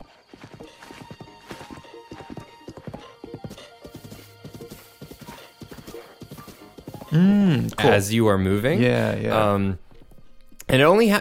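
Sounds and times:
horse hooves clip-clopping while being ridden: 0.0 - 7.2
speech: 7.1 - 9.8, 10.7 - 11.1.

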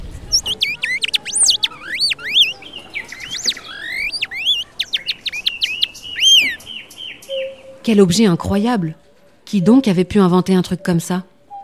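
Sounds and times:
person whistling an imitation of nightingale song: 0.3 - 6.6
speech: 7.9 - 11.3.

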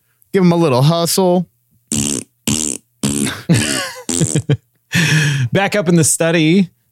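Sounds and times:
speech: 0.4 - 2.0, 5.6 - 6.9
fart sound effects: 1.9 - 4.5.

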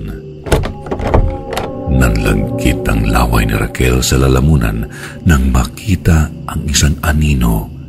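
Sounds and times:
doorknob rattling as someone forcefully twists it: 0.4 - 1.8
speech: 2.2 - 7.7.

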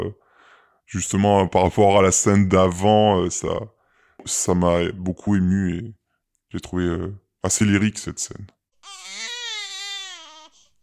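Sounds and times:
speech: 0.9 - 8.6
baby wailing: 8.8 - 10.8.

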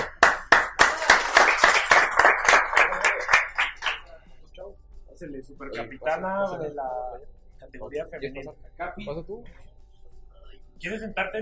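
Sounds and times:
group applauding in rhythmic claps: 0.0 - 4.5
speech: 5.2 - 9.7, 10.8 - 11.4.

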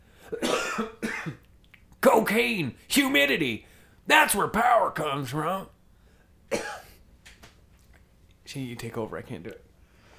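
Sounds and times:
person coughing harshly: 0.2 - 1.4, 6.5 - 7.0
speech: 0.3 - 1.4, 2.3 - 5.8, 6.5 - 6.8, 8.5 - 9.7.

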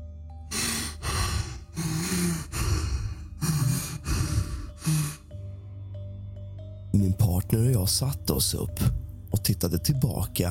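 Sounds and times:
heavy labored rasping breathing: 0.5 - 5.9
speech: 7.0 - 10.4.

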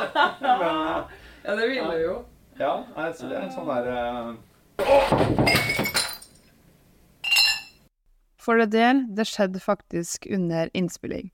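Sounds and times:
laughter: 0.0 - 1.2
speech: 0.0 - 6.0, 8.4 - 11.3
drinking glass knocked over, clinking: 7.2 - 7.8.

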